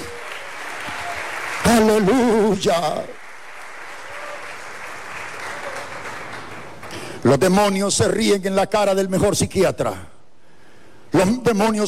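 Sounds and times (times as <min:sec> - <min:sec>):
audience applauding in praise: 0:00.0 - 0:07.2
loud voice calling out an exclamation: 0:01.6 - 0:03.0
speech: 0:01.7 - 0:03.2, 0:07.2 - 0:10.1, 0:11.1 - 0:11.8.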